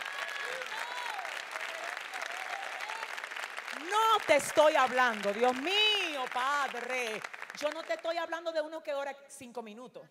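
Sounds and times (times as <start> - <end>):
cheering voices: 0.0 - 7.2
crowd applause: 0.0 - 8.2
speech: 3.8 - 10.0.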